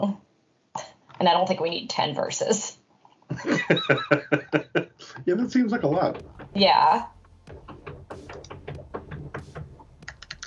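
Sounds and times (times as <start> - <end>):
speech: 1.2 - 2.8, 3.4 - 7.2
laughter: 3.3 - 6.2
cat scratching and pawing at studio door: 6.1 - 10.4.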